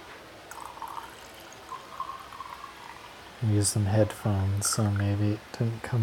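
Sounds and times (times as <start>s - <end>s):
wine being poured from a bottle: 0.5s - 3.2s
speech: 3.4s - 6.0s.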